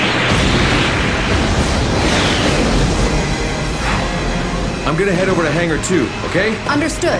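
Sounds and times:
missile explosion during an attack on a base: 0:00.0 - 0:05.7
speech: 0:04.9 - 0:07.1.

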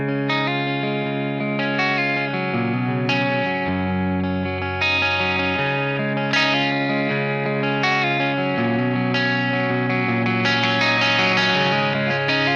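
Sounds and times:
electric guitar with chorus-laden slightly distorted amp preset tone: 0:00.0 - 0:12.5.

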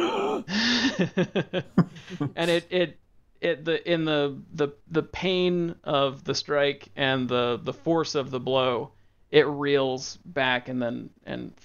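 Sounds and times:
big deep strained gasp: 0:00.0 - 0:01.0, 0:01.9 - 0:02.6
speech: 0:01.0 - 0:11.6.

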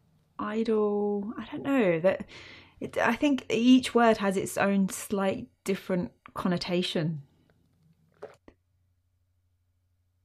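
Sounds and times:
speech: 0:00.4 - 0:07.3
slurping sip of a drink: 0:08.1 - 0:08.5.

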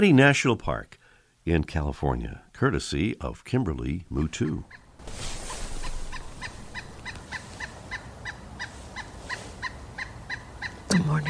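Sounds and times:
speech: 0:00.0 - 0:05.4
pileated woodpecker pecking a tree: 0:04.4 - 0:11.2.

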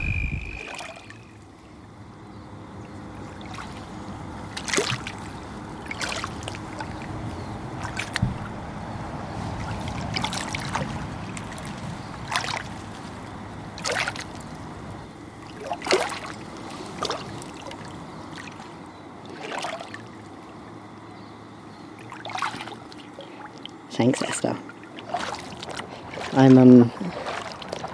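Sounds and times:
low murmur of flowing river: 0:00.0 - 0:27.9
splashing steps wading through shallow river water: 0:04.5 - 0:07.0, 0:07.8 - 0:08.5, 0:09.6 - 0:14.6, 0:15.5 - 0:18.6, 0:22.0 - 0:27.9
speech: 0:24.0 - 0:24.6, 0:26.4 - 0:27.0.

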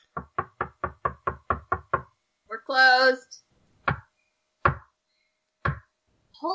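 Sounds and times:
soft knocking on a wooden door: 0:00.0 - 0:02.2, 0:03.8 - 0:04.9, 0:05.6 - 0:05.9
speech: 0:02.7 - 0:03.4.

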